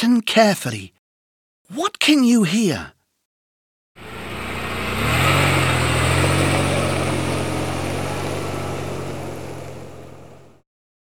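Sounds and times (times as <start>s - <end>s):
speech: 0.0s - 1.0s, 1.7s - 3.0s
car engine idling and revving: 4.0s - 10.6s.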